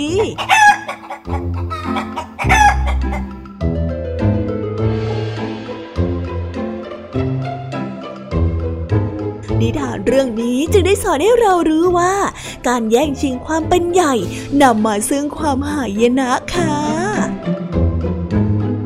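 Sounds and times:
speech: 0:00.0 - 0:01.5, 0:10.1 - 0:16.8
bouncy instrumental music: 0:00.0 - 0:18.8
rooster crowing: 0:00.4 - 0:03.4.

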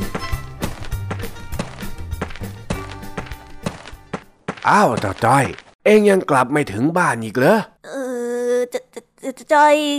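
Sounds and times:
footsteps of an older man walking past: 0:00.0 - 0:05.8
speech: 0:04.6 - 0:08.0, 0:08.7 - 0:09.9.

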